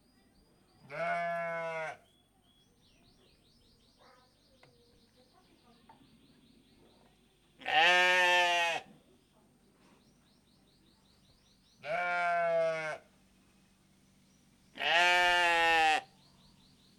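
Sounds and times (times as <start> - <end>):
Hungarian sheep bleating: 0.9 - 2.0, 7.6 - 8.9, 11.8 - 13.0, 14.8 - 16.1.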